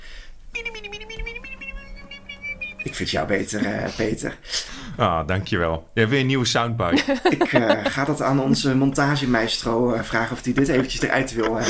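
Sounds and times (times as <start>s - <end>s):
man imitating a sobbing clown with a long wailing cry: 0.6s - 4.0s
speech: 2.8s - 11.6s
laughter: 6.9s - 8.8s.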